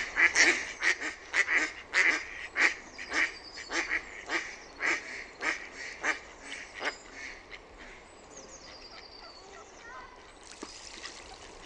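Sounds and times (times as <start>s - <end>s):
faint background noise: 0.0s - 11.6s
mallard quacking: 0.1s - 8.0s.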